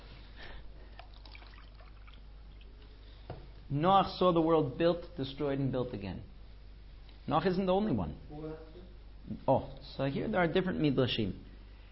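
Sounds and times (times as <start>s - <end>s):
faint water drips: 0.8s - 3.0s
water trickling and pouring: 1.0s - 2.6s
speech: 3.3s - 6.3s, 7.3s - 11.4s.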